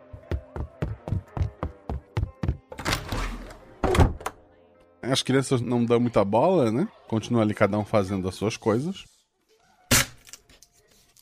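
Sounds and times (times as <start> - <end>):
thudding steps of a woman hurrying: 0.0 - 2.7
door shutting with a solid thunk: 3.8 - 4.4
speech: 5.1 - 9.1.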